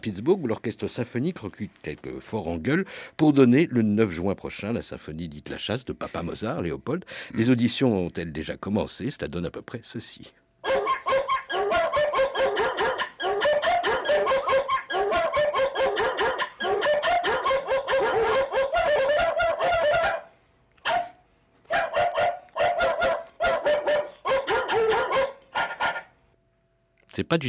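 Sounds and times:
speech: 0:00.0 - 0:11.0, 0:27.2 - 0:27.4
pack of dogs barking and yelping: 0:10.6 - 0:26.2.

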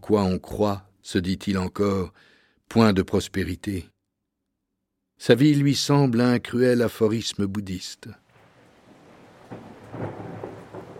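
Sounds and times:
speech: 0:00.1 - 0:04.0, 0:05.2 - 0:08.2, 0:09.5 - 0:10.2
steady rain pattering on a lacquered saddle: 0:08.3 - 0:10.9.

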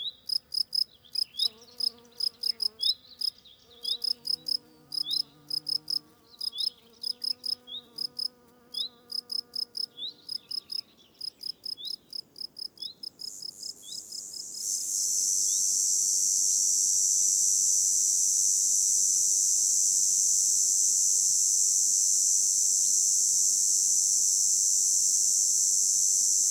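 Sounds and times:
insects chirping outdoors in a valley: 0:00.2 - 0:26.5.

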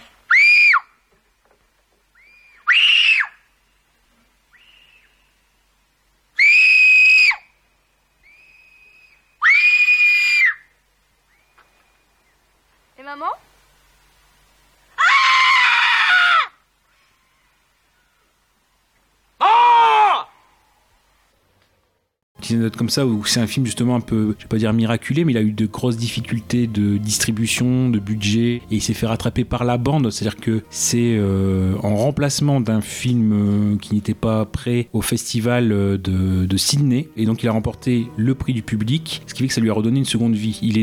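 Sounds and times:
loud piercing human screams: 0:00.3 - 0:00.9, 0:02.2 - 0:03.4, 0:06.4 - 0:07.5, 0:09.4 - 0:10.7, 0:15.0 - 0:16.6, 0:19.4 - 0:20.4
speech: 0:13.1 - 0:13.4, 0:22.5 - 0:40.8.

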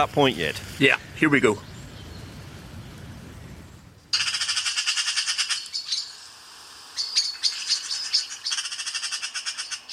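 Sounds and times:
speech: 0:00.0 - 0:01.7
magpie chattering call: 0:04.2 - 0:06.1, 0:07.0 - 0:09.9.

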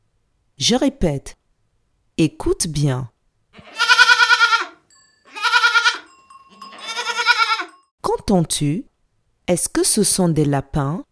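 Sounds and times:
speech: 0:00.6 - 0:01.4, 0:02.2 - 0:03.7, 0:08.1 - 0:08.9, 0:09.5 - 0:11.0
goat bleating: 0:03.6 - 0:07.8.

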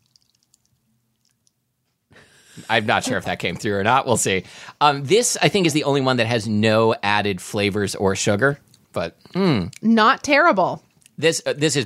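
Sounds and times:
coconut water dribbling from a can as it is poured: 0:00.0 - 0:01.6
speech: 0:02.6 - 0:11.8.

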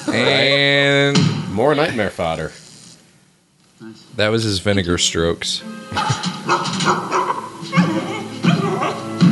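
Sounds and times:
speech: 0:00.2 - 0:02.7, 0:03.8 - 0:07.2
dog barking and whimpering: 0:06.0 - 0:09.2.

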